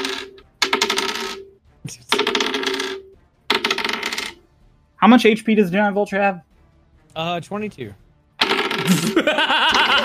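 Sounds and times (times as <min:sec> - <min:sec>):
physical dice rolling on a hard tabletop: 0:00.0 - 0:01.4, 0:02.2 - 0:04.4
speech: 0:01.8 - 0:02.0, 0:05.0 - 0:06.5, 0:07.2 - 0:08.0, 0:08.8 - 0:10.0
laughter: 0:08.8 - 0:10.0.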